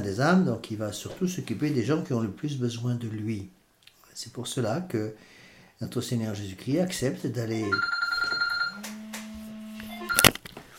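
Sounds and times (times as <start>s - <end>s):
speech: 0.0s - 3.6s, 4.2s - 8.0s
telephone ringing with a steady electronic tone: 7.6s - 9.1s, 9.8s - 10.4s.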